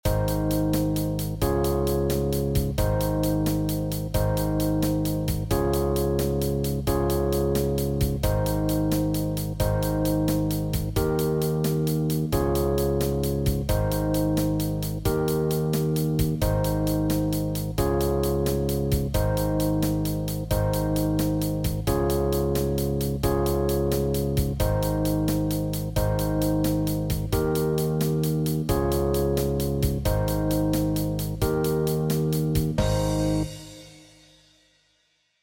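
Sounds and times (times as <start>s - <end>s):
6/8 blues backing track without guitar: 0.0s - 33.7s.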